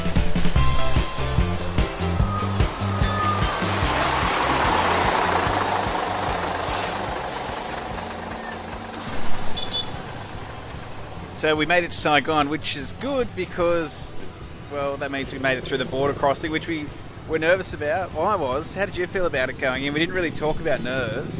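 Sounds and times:
bus engine drone during ride: 0:00.0 - 0:21.3
broadband road hiss: 0:01.2 - 0:11.4
speech: 0:11.4 - 0:21.3.

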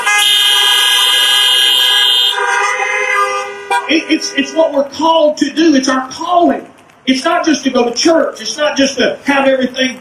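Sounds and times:
car horns honking together: 0:00.0 - 0:05.2
speech: 0:04.0 - 0:09.9.

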